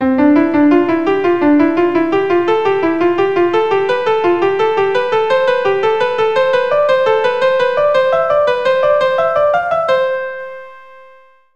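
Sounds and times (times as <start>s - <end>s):
keyboard playing a scale: 0.0s - 11.5s.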